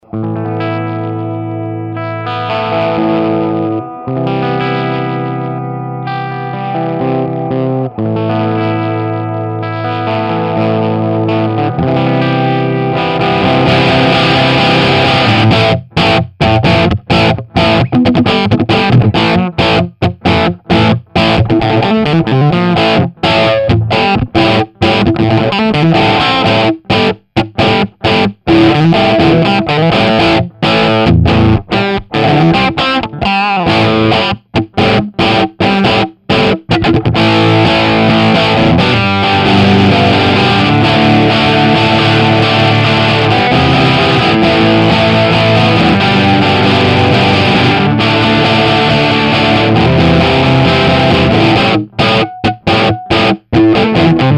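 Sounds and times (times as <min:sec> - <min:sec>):
electric guitar through JTM45 preamp model on a POD HD500: 0:00.0 - 0:54.3.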